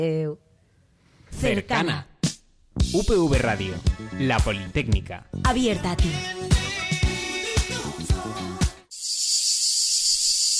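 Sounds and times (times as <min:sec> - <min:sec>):
speech: 0:00.0 - 0:00.5, 0:01.3 - 0:02.1, 0:02.8 - 0:06.5
rhythmic music with punchy beats: 0:02.2 - 0:08.9
loud high-pitched cicada buzz: 0:08.9 - 0:10.5.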